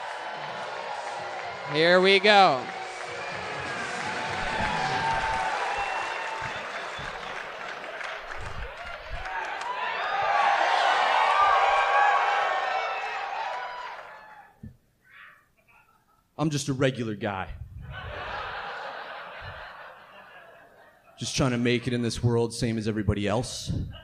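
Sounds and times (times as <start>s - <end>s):
laughter: 0.0s - 10.5s, 17.8s - 22.1s
audience at a live comedy show applauding and cheering: 0.0s - 14.6s
speech: 1.7s - 2.8s, 16.4s - 17.6s, 21.2s - 24.0s.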